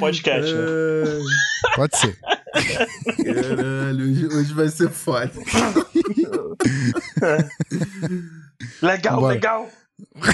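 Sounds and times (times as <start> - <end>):
speech: 0.0 - 10.3
voiced hums: 0.4 - 8.8
laughter: 1.0 - 8.6
person clearing throat: 5.5 - 8.5, 10.1 - 10.3.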